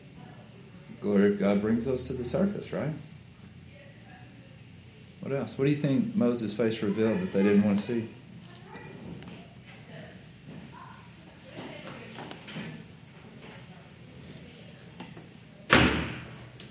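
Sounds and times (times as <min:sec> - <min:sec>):
faint indistinct voices: 0:00.0 - 0:16.7
low murmur: 0:00.0 - 0:16.7
speech: 0:01.0 - 0:03.1, 0:05.2 - 0:08.2
door slamming: 0:15.7 - 0:16.4.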